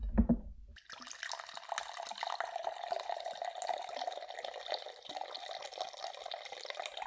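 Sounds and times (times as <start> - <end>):
low knock: 0.0 - 0.6
vodka poured into a glass for a cocktail: 0.8 - 7.0.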